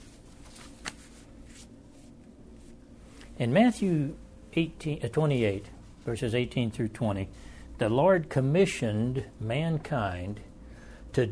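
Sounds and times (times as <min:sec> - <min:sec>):
paper sheets being shuffled and handled: 0:00.0 - 0:02.8
low steady hum: 0:00.0 - 0:11.3
speech: 0:03.4 - 0:10.5, 0:11.2 - 0:11.3.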